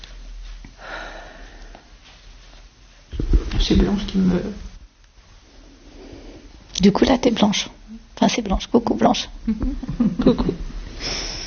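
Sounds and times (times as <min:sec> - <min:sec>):
faint hiss: 0:00.0 - 0:11.4
speech: 0:03.6 - 0:04.7, 0:06.8 - 0:11.3
sharp sniffing inhale through the nose: 0:11.0 - 0:11.4.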